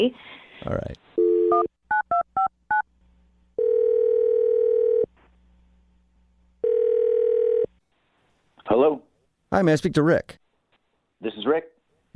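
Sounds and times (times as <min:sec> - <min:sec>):
speech: 0:00.0 - 0:01.6, 0:08.8 - 0:10.4, 0:11.2 - 0:12.1
telephone ringback tones: 0:03.6 - 0:05.1, 0:06.6 - 0:07.7.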